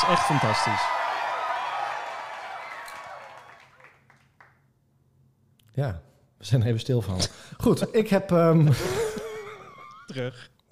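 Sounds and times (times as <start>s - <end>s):
dense hand clapping applause: 0.0s - 4.6s
speech: 0.1s - 1.0s, 5.8s - 9.0s, 10.1s - 10.6s
laughter: 8.7s - 10.4s.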